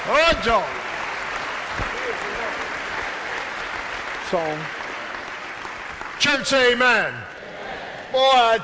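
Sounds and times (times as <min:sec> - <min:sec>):
congregation applauding with dense hand clapping: 0:00.0 - 0:07.4
speech: 0:00.1 - 0:00.8, 0:01.8 - 0:02.7, 0:04.3 - 0:04.8, 0:06.2 - 0:07.3, 0:08.1 - 0:08.6.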